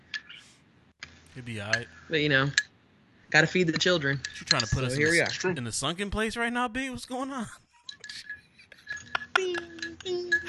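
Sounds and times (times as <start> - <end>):
speech: 1.4 - 2.6, 3.3 - 7.6
spoon clinking against a porcelain teacup while stirring honey: 4.2 - 5.5, 7.9 - 10.4.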